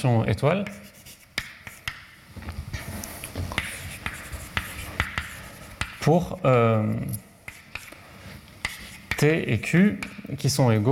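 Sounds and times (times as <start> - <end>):
speech: 0.0 - 0.9, 6.0 - 7.3, 9.2 - 10.9
chalk or marker strokes on a board during a university mathematics lecture: 0.5 - 2.1, 2.8 - 6.1, 7.4 - 9.4.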